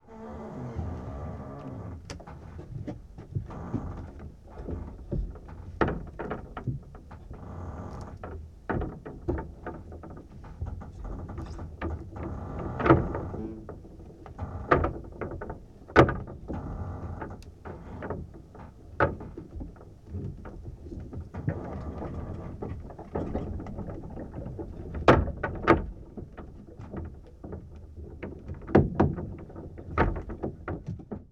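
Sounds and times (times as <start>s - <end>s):
period ship rattles and movements: 0.1s - 31.2s.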